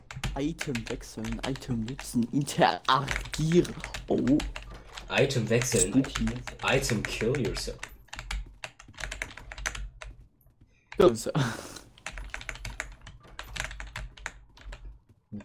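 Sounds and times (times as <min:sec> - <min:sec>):
computer keyboard clicking: 0:00.0 - 0:10.3, 0:11.8 - 0:15.4
speech: 0:00.4 - 0:07.9, 0:11.0 - 0:11.7.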